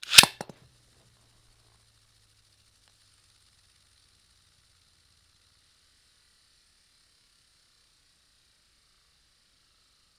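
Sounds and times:
Beyblade spinning top on carpet: 0.0s - 0.6s.

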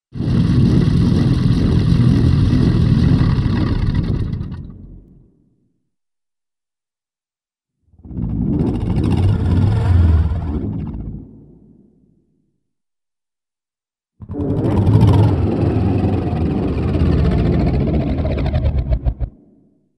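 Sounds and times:
cartoon low-pitched machine growl descending to a stop: 0.2s - 5.2s, 8.0s - 11.9s, 14.2s - 19.4s.

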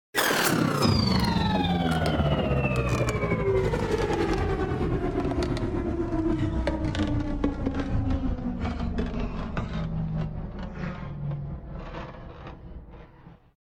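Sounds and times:
spaceship engine turning off: 0.2s - 13.4s
spaceship passing by: 0.2s - 13.5s.

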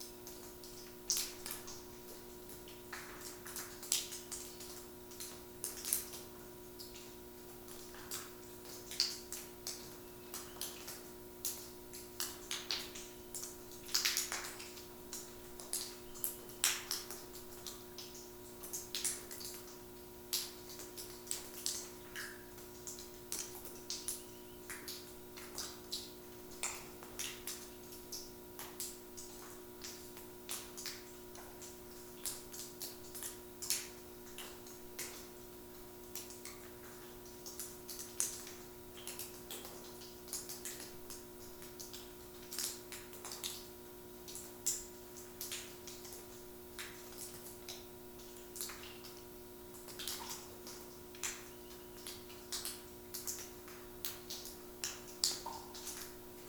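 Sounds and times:
urban underground water dripping: 0.0s - 56.4s.

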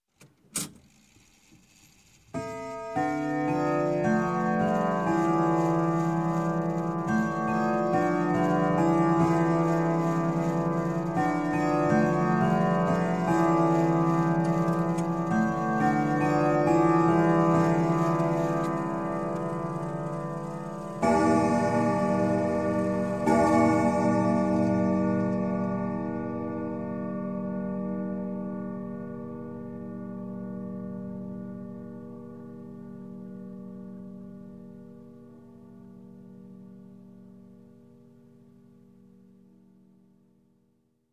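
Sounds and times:
grandfather clock chime striking: 2.4s - 29.1s.

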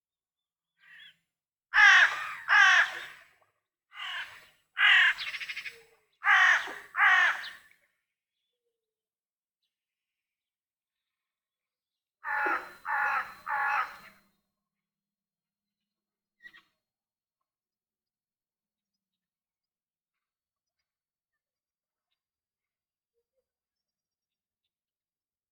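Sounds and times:
crows: 1.8s - 7.7s, 12.2s - 14.2s.

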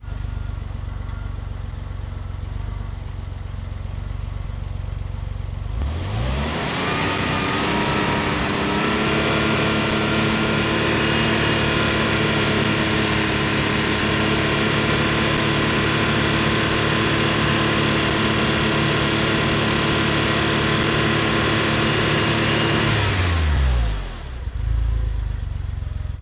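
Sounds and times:
Porsche 911T engine fast idle: 0.0s - 26.2s.

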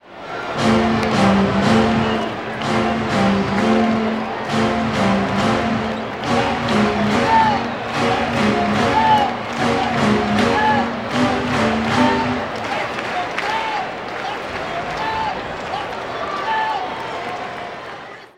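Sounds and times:
baseball stadium organ playing: 0.6s - 12.9s
baseball crowd clapping: 0.6s - 18.3s.

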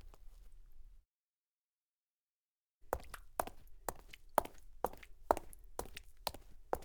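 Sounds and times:
foley footsteps of high heels on wet cement: 2.9s - 6.8s.

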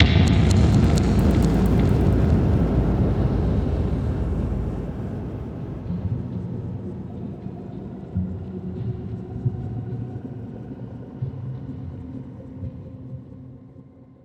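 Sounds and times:
boom: 0.0s - 6.4s
cinematic metal impacts: 0.0s - 6.9s.

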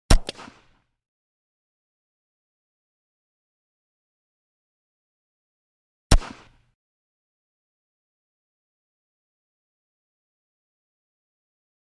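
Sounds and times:
.22 pistol blast: 0.1s - 0.7s, 6.1s - 6.6s.

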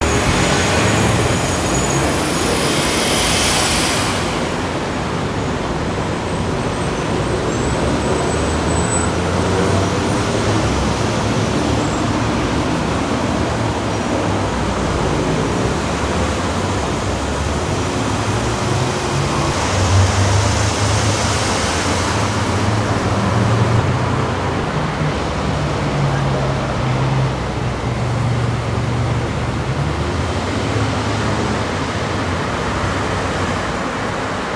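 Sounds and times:
busy city street traffic in LA: 0.0s - 34.5s.

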